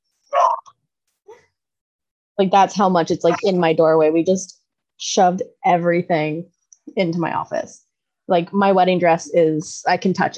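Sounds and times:
dog barking: 0:00.4 - 0:00.7
speech: 0:02.4 - 0:10.3.

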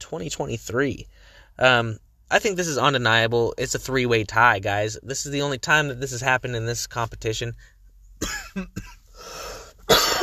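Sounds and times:
speech: 0:00.1 - 0:10.0
person coughing: 0:08.2 - 0:10.2
harsh throat clearing: 0:09.9 - 0:10.2.

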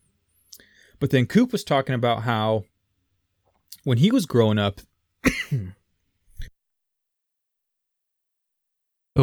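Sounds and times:
speech: 0:01.0 - 0:02.7, 0:03.8 - 0:05.8
person coughing roughly: 0:05.2 - 0:05.8.

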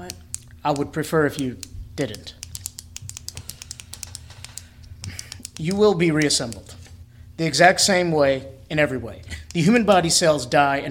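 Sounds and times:
ballpoint pen clicking: 0:00.0 - 0:06.7
low steady hum: 0:00.0 - 0:10.8
speech: 0:00.6 - 0:02.4, 0:05.6 - 0:06.8, 0:07.4 - 0:10.8.

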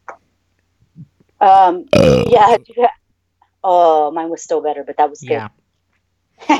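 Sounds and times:
speech: 0:01.4 - 0:03.0, 0:03.6 - 0:05.6
loud deliberate burp: 0:01.9 - 0:02.6.

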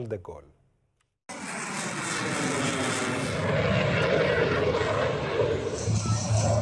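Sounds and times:
speech: 0:00.0 - 0:00.6
Rafale, F-16 and F-18 fighter jets roaring overhead at air show: 0:01.3 - 0:06.5.

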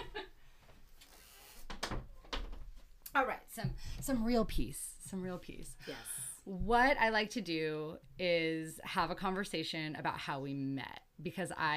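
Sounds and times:
door creaking shut: 0:01.6 - 0:02.8
speech: 0:03.2 - 0:11.7.

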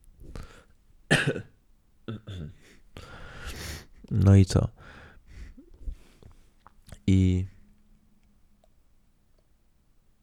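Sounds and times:
person coughing in short harsh bursts: 0:01.1 - 0:01.5, 0:02.1 - 0:02.6
throat clearing: 0:01.1 - 0:01.5, 0:02.1 - 0:02.6
speech: 0:02.1 - 0:03.1, 0:04.1 - 0:04.8, 0:07.1 - 0:07.5.

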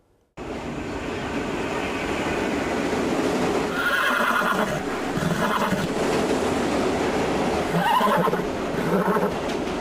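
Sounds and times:
rail noise: 0:00.0 - 0:09.7
steady roaring din of a train station: 0:00.4 - 0:09.7
racehorse whinnying loudly at a train station: 0:03.7 - 0:05.9, 0:07.7 - 0:09.4.

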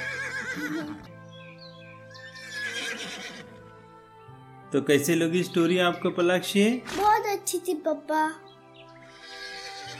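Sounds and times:
horse neighing: 0:00.0 - 0:01.1, 0:02.1 - 0:03.6, 0:09.0 - 0:09.9
speech: 0:00.6 - 0:01.2, 0:04.7 - 0:08.5.

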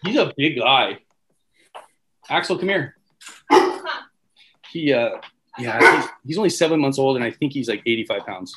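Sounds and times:
speech: 0:00.0 - 0:01.0, 0:02.3 - 0:03.7, 0:04.7 - 0:08.5
large seven-month-old puppy of about 85 pounds barking: 0:03.5 - 0:03.9, 0:05.6 - 0:06.2.

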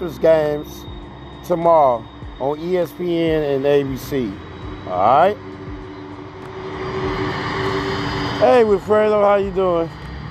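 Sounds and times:
speech: 0:00.0 - 0:05.5, 0:08.4 - 0:10.0
propeller airplane droning overhead: 0:00.0 - 0:10.2.

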